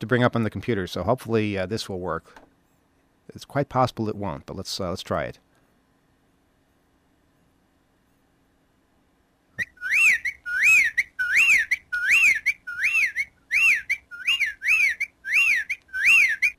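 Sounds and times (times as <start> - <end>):
speech: 0.0 - 2.5, 3.3 - 5.4
whippoorwill calling: 9.6 - 16.5.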